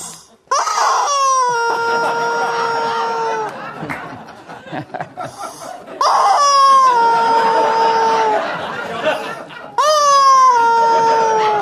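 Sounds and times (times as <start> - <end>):
screaming rubber chicken toy being squeezed: 0.5 - 3.3, 6.0 - 8.3, 9.8 - 11.5
people laughing: 1.1 - 11.5
people chattering: 1.5 - 11.5.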